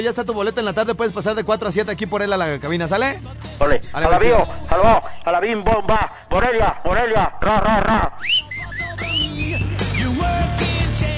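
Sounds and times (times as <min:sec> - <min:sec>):
speech: 0:00.0 - 0:08.4
person whistling sliding rising and falling notes: 0:08.2 - 0:10.2.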